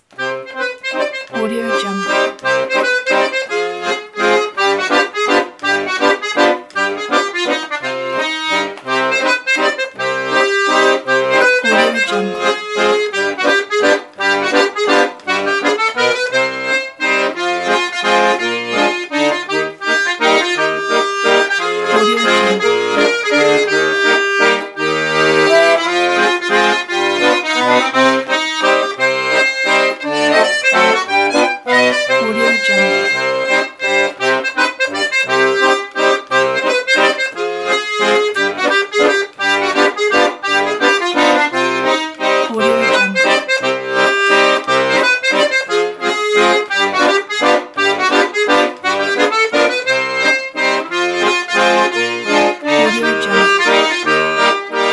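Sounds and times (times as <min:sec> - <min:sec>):
French java accordion music: 0:00.0 - 0:54.9.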